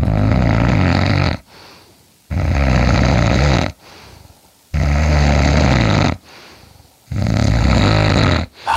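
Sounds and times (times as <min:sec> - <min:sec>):
loud rasping snoring recorded under the sleeper's chin: 0:00.0 - 0:01.5, 0:02.3 - 0:03.8, 0:04.7 - 0:06.2, 0:07.1 - 0:08.7
quiet breath: 0:01.4 - 0:02.3, 0:03.7 - 0:04.7, 0:06.2 - 0:07.1, 0:08.5 - 0:08.7.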